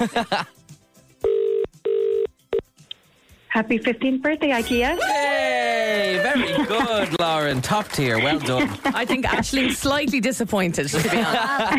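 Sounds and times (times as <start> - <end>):
laughter: 0.0 - 0.5, 5.8 - 10.1, 10.8 - 11.7
speech: 0.0 - 0.6, 3.6 - 5.4, 6.2 - 11.7
telephone ringing with electronic buzzing tones: 1.2 - 2.3.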